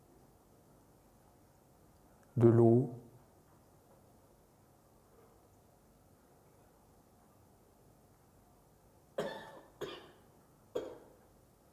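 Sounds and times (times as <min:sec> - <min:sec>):
hiss: 0:00.0 - 0:11.7
speech: 0:02.4 - 0:03.0
person coughing: 0:09.2 - 0:11.2.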